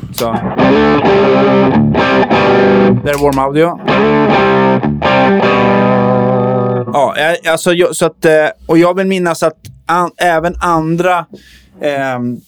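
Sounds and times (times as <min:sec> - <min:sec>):
electric guitar chords through a Chinese Klon-copy overdrive pedal: 0:00.0 - 0:07.0
speech: 0:00.2 - 0:06.0, 0:06.9 - 0:12.4.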